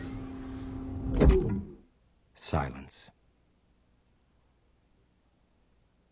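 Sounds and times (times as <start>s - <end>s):
heavy pneumatic whoosh and thump of a door seal: 0.0s - 1.8s
motorized hum of a door seal activating: 0.0s - 1.9s
speech: 2.5s - 3.1s.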